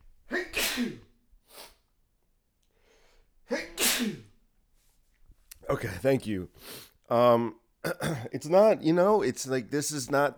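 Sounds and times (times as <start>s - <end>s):
person sneezing: 0.3s - 1.8s, 3.5s - 4.4s
speech: 0.8s - 1.1s, 5.8s - 10.3s.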